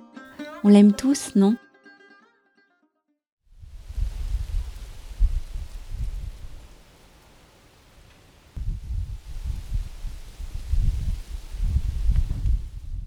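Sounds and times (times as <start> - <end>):
speech: 0.6 - 1.6
wind rustling tree leaves: 3.6 - 13.0.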